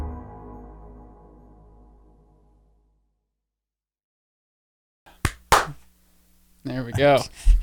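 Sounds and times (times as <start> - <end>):
single sharp hand clap: 5.1 - 5.9
person speaking: 5.1 - 7.6.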